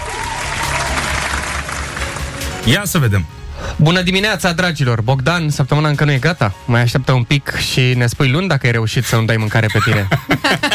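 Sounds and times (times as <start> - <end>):
crowd applause and cheering: 0.0 - 2.7
speech: 2.6 - 10.7
laughter: 9.5 - 10.7.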